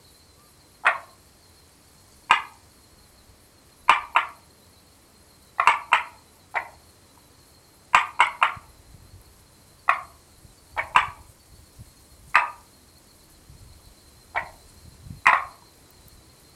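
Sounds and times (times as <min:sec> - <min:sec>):
faint steady background hiss: 0:00.0 - 0:16.5
frog giving short sharp knocking clucks: 0:00.8 - 0:01.2, 0:02.3 - 0:02.6, 0:03.9 - 0:04.4, 0:05.6 - 0:06.8, 0:07.9 - 0:08.7, 0:09.8 - 0:10.2, 0:10.8 - 0:11.3, 0:12.3 - 0:12.7, 0:14.3 - 0:14.6, 0:15.2 - 0:15.6.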